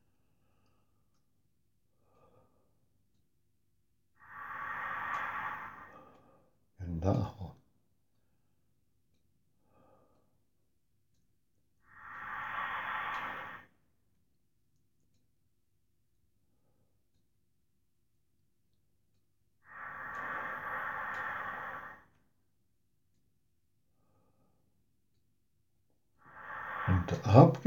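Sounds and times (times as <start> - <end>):
deep breaths into belly then chest: 1.9 - 2.9, 4.2 - 7.5, 9.6 - 10.5, 11.8 - 13.9, 19.6 - 22.4, 23.9 - 24.7, 26.2 - 27.6
person speaking a single short word: 6.8 - 7.5, 26.9 - 27.6
speech: 7.0 - 7.6, 26.9 - 27.6.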